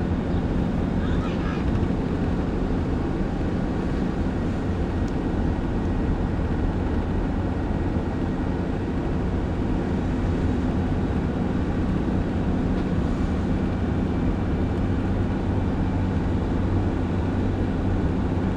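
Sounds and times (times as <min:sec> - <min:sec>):
car interior engine and road noise while driving in autumn: 0:00.0 - 0:18.5
faint voice: 0:00.3 - 0:01.8.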